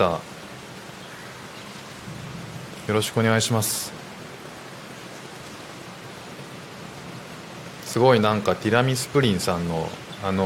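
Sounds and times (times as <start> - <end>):
speech: 0.0 - 0.3, 2.9 - 4.0, 7.9 - 10.4
steady rain hiss during a thunderstorm in Singapore: 0.0 - 10.4
low rolling thunder rumbling in Singapore: 2.0 - 4.4.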